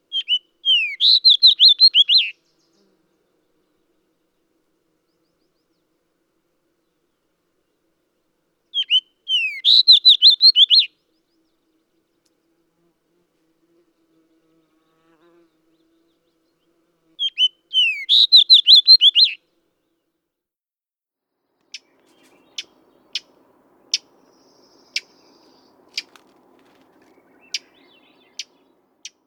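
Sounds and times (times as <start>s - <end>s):
red fox sparrow: 0.1s - 2.9s, 8.7s - 11.5s, 15.7s - 19.4s, 21.7s - 29.2s.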